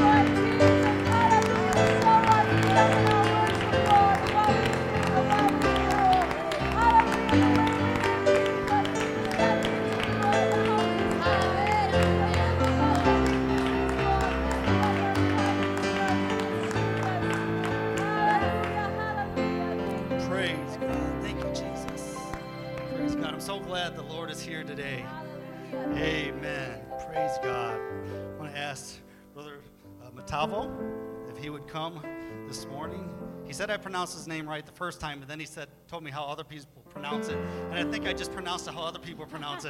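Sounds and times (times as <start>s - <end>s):
crowd clapping in rhythm: 0.0s - 26.8s, 37.8s - 39.6s
loud sustained music with voices: 0.0s - 35.2s, 36.9s - 39.6s
speech: 33.6s - 39.6s.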